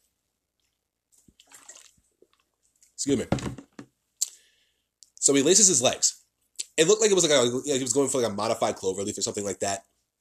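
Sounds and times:
sipping of water with wet slurping: 0:00.6 - 0:03.0
speech: 0:03.0 - 0:03.6, 0:05.3 - 0:06.2, 0:06.8 - 0:09.9.

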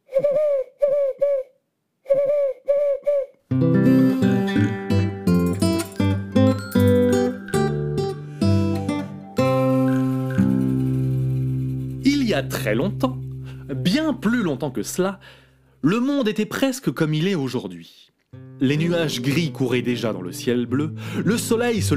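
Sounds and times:
owl hooting: 0:00.1 - 0:03.4
burst of music: 0:03.6 - 0:14.1
speech: 0:12.4 - 0:13.2, 0:13.9 - 0:21.9.

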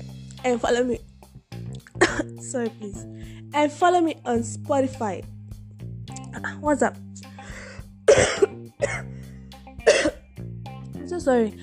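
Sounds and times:
speech: 0:00.4 - 0:01.1, 0:02.2 - 0:05.4, 0:06.4 - 0:07.3, 0:11.1 - 0:11.6
sharp coughs: 0:01.9 - 0:02.4, 0:08.1 - 0:09.1, 0:09.8 - 0:10.2.

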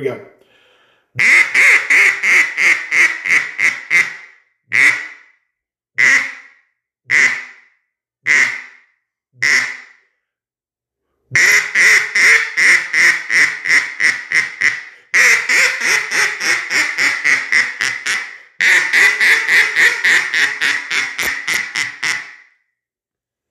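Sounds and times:
speech: 0:00.0 - 0:00.4, 0:01.2 - 0:05.1
Falk CA11 single-reed cane duck call quacking: 0:01.2 - 0:05.2, 0:06.0 - 0:06.5, 0:07.1 - 0:07.6, 0:08.3 - 0:08.8, 0:09.4 - 0:09.9, 0:11.3 - 0:22.5.

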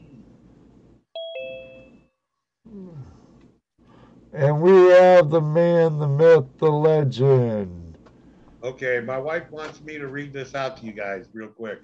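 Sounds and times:
two-tone electronic chime signalling a caller joining: 0:01.2 - 0:02.1
speech: 0:04.3 - 0:07.8, 0:08.6 - 0:11.8.

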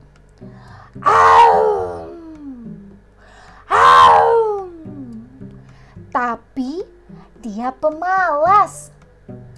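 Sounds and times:
tiger roaring: 0:01.0 - 0:02.1
tiger moaning growls: 0:01.0 - 0:02.4
speech: 0:06.2 - 0:08.9.

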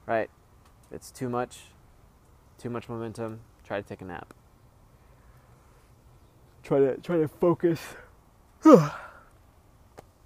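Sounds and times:
speech: 0:00.1 - 0:01.8, 0:02.6 - 0:04.4, 0:06.6 - 0:08.0, 0:08.6 - 0:09.1
person giving a big yawn: 0:08.6 - 0:09.2.

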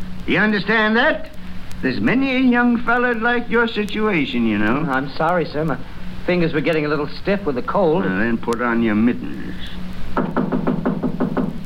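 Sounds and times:
speech: 0:00.2 - 0:09.8
knocking on a door: 0:10.2 - 0:11.6.

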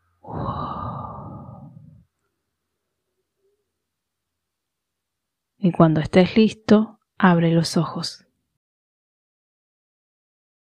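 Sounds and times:
slow breathy exhalation of a kidney healing sound breathing exercise: 0:00.2 - 0:02.1
speech: 0:05.6 - 0:08.2.

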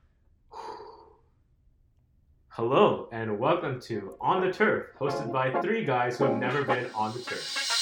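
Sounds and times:
deep breath: 0:00.5 - 0:01.3
speech: 0:02.6 - 0:07.7.

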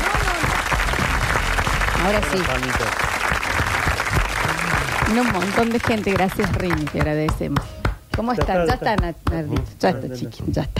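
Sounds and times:
audience applause: 0:00.0 - 0:07.4
speech: 0:02.0 - 0:03.1, 0:05.1 - 0:10.7.

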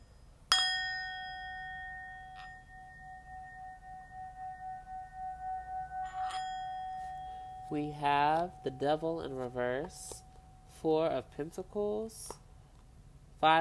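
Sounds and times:
small bell struck and ringing: 0:00.0 - 0:10.8
speech: 0:07.7 - 0:10.2, 0:10.8 - 0:12.4, 0:13.4 - 0:13.5.

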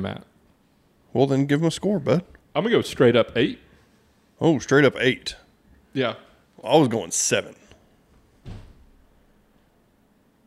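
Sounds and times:
speech: 0:00.0 - 0:00.3, 0:01.1 - 0:03.6, 0:04.4 - 0:05.4, 0:06.0 - 0:07.6
door being banged by someone forcing it: 0:08.4 - 0:09.1.

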